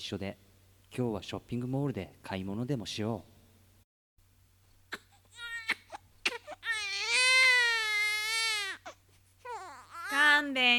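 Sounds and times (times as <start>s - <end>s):
speech: 0.0s - 3.3s, 10.4s - 10.7s
baby crying: 4.9s - 10.4s.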